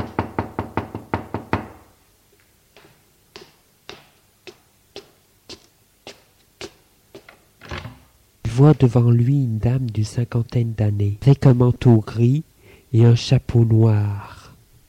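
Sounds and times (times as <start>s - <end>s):
knocking on a door: 0.0s - 1.9s
quieter sharp taps: 2.8s - 7.4s
speech: 8.6s - 14.4s.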